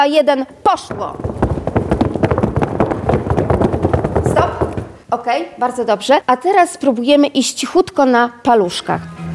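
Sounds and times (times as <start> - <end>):
speech: 0.0 - 1.3, 5.1 - 9.2
group of children stamping their shoes on the floor: 0.7 - 5.2.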